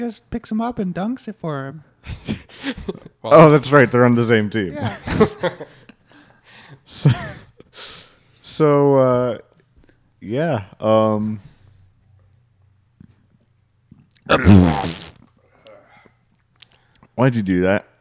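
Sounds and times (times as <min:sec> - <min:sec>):
speech: 0:00.0 - 0:05.8, 0:06.9 - 0:07.4, 0:08.6 - 0:09.5, 0:10.2 - 0:11.5, 0:14.3 - 0:15.1, 0:17.2 - 0:17.9
short noisy vocal burst: 0:14.3 - 0:15.2
loud drawn-out croaky burps: 0:14.3 - 0:15.3.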